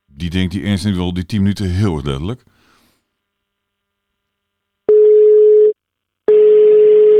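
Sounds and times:
speech: 0.2s - 2.5s
phone ringing tone with single-pitched electronic beep: 4.9s - 7.1s.

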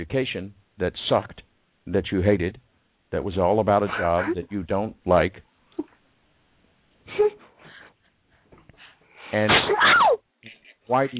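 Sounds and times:
speech: 0.0s - 5.9s, 9.3s - 11.1s
voiced sneeze ending in a brief high squeak: 9.4s - 10.2s.

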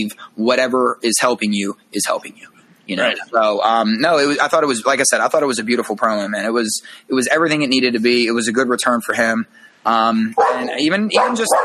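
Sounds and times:
speech: 0.0s - 11.6s
big dog barking: 10.4s - 11.6s.

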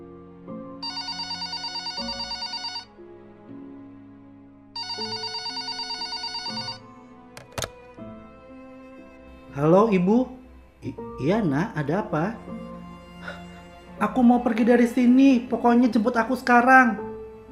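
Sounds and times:
soft music: 0.0s - 17.5s
telephone ringing with rapid bell trills: 0.8s - 2.9s, 4.8s - 6.9s
brief sharp click: 7.4s - 7.8s
speech: 9.6s - 12.6s, 14.0s - 17.1s.

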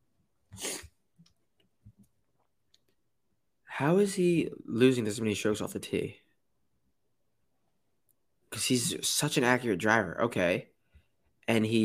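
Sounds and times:
short forceful nose blow: 0.5s - 1.0s
small sniffs: 0.5s - 1.0s
speech: 3.8s - 6.2s, 8.6s - 10.7s, 11.5s - 11.8s.

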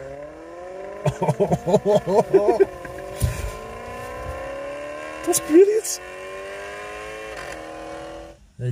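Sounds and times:
speech: 1.0s - 2.8s, 5.2s - 6.1s, 8.6s - 8.7s
voice imitating a Maserati Gran Turismo engine revving: 1.0s - 3.8s, 5.2s - 6.0s
low thump: 3.1s - 4.4s.

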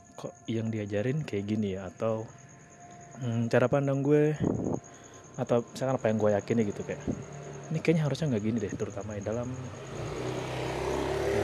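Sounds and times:
speech: 0.2s - 2.4s, 3.2s - 10.0s
motorcycle engine droning: 4.2s - 11.4s.

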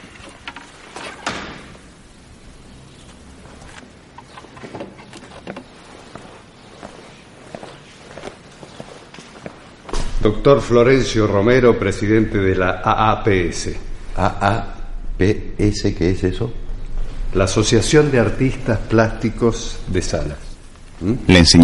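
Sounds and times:
footsteps of a man walking firmly into a room: 4.5s - 11.1s, 16.6s - 17.8s
speech: 10.2s - 16.6s, 17.3s - 21.6s.

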